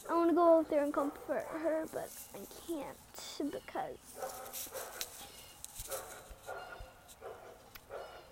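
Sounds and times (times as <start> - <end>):
speech: 0.1 - 5.1
dog barking: 1.0 - 1.8, 4.2 - 5.1, 5.9 - 8.3.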